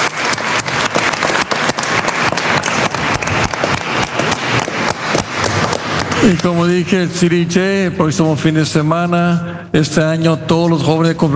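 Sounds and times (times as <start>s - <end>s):
crowd applauding loudly for a saint: 0.0s - 6.9s
speech: 6.3s - 11.3s.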